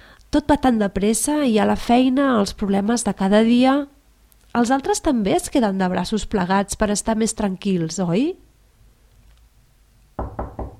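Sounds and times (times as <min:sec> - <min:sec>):
speech: 0:00.3 - 0:08.5
knocking on a door: 0:10.2 - 0:10.7.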